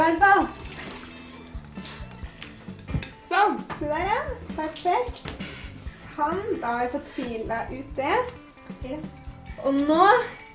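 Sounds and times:
ice-cold water pouring into a container: 0.0 - 2.6, 8.4 - 10.0
speech: 3.4 - 5.4, 6.2 - 10.4.

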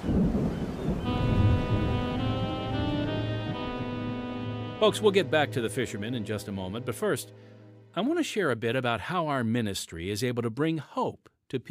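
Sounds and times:
deep rolling thunder during a storm at sea: 0.0 - 2.4
heavy rain during a storm at sea: 0.0 - 4.1
speech: 4.8 - 11.6.

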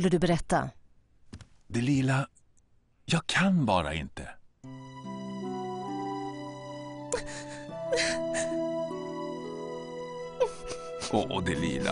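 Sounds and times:
speech: 0.0 - 0.8, 1.7 - 2.4, 3.1 - 4.8, 7.2 - 8.6, 11.1 - 11.9
woman crying and whimpering: 7.0 - 9.2, 10.1 - 11.0
sharp breathy sobbing gasps of a woman: 7.1 - 8.6.

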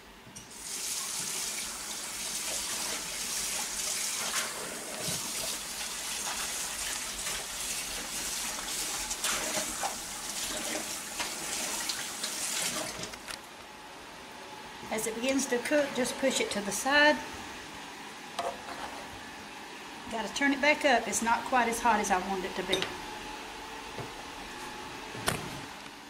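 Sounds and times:
tap water running into a kitchen sink: 0.4 - 13.3
speech: 15.0 - 17.4, 20.2 - 23.0.

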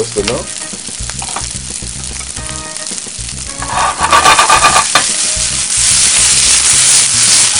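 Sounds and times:
vegetables frying and sizzling in hot pan: 0.0 - 7.5
crackling and scraping of vegetables stirred in pan: 3.0 - 7.5.

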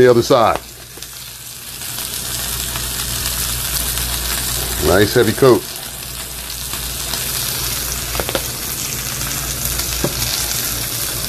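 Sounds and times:
speech: 0.0 - 0.7, 4.8 - 5.7
seasoned steak sizzling in a hot pan: 0.0 - 11.2.

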